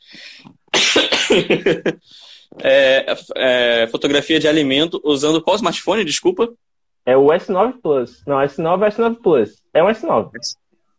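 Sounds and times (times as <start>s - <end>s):
breathy inhales: 0.0s - 0.5s, 2.0s - 2.6s
harsh coughing fit: 0.7s - 2.0s
speech: 1.0s - 10.9s.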